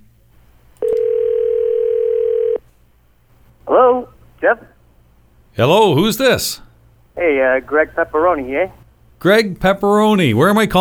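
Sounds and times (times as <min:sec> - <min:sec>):
telephone line ringing as a call connects: 0:00.8 - 0:02.6
speech: 0:05.6 - 0:10.8.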